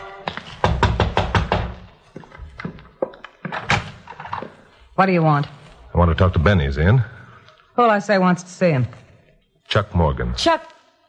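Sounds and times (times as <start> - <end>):
firm knocking on a wooden back door: 0.6 - 1.8
speech: 5.0 - 7.1, 7.8 - 9.0, 9.7 - 10.7.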